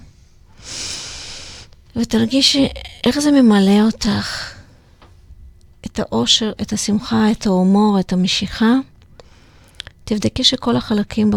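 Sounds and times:
long deep inhalation drawn in steadily through the nose: 0.1 - 1.8
speech: 2.0 - 4.5, 6.0 - 8.9, 10.1 - 11.3.

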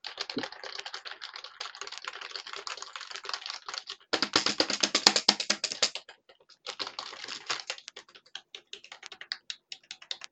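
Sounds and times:
typing on a computer keyboard: 0.0 - 10.3.

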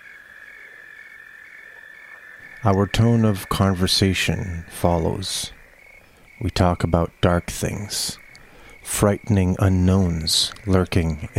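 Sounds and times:
crickets trilling at nightfall in a valley: 0.0 - 11.3
speech: 2.6 - 5.6, 6.4 - 8.2, 8.8 - 11.3.

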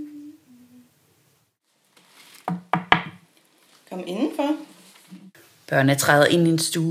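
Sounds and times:
soft knocking on a wooden door: 2.5 - 3.2
speech: 4.0 - 4.7, 5.7 - 6.8.

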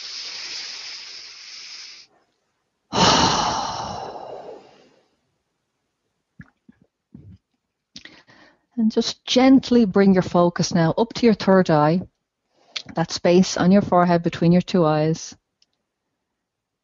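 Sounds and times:
deep breath drawn in during a relaxation exercise: 0.0 - 2.1, 2.9 - 5.1, 8.0 - 8.7
speech: 8.8 - 12.1, 12.9 - 15.4.

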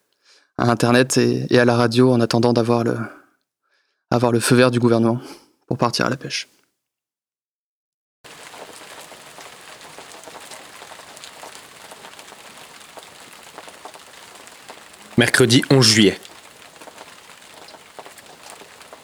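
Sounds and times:
speech: 0.6 - 3.2, 4.1 - 6.6, 15.2 - 16.3
steady rain falling on a surface: 8.3 - 19.0.

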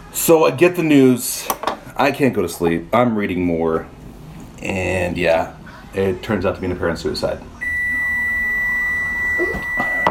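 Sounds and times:
speech: 0.2 - 4.0, 4.6 - 7.5
microwave oven beeping: 7.6 - 10.0.

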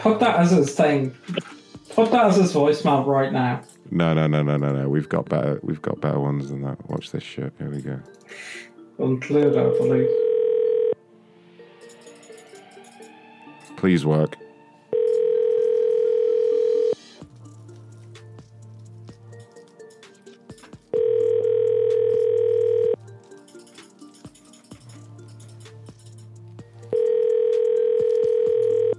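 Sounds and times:
speech: 0.0 - 10.2, 13.8 - 14.4
electronic ringback tones of a phone line ringing out: 9.4 - 11.0, 14.9 - 17.0, 20.9 - 23.0, 26.9 - 28.9.

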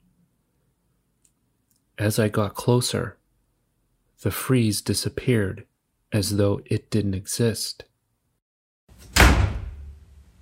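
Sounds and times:
speech: 2.0 - 3.2, 4.2 - 7.9
door slamming shut: 9.0 - 10.1.

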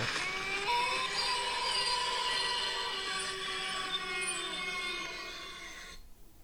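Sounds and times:
eerie shrill wailing and moaning with screeching tones: 0.0 - 6.0.

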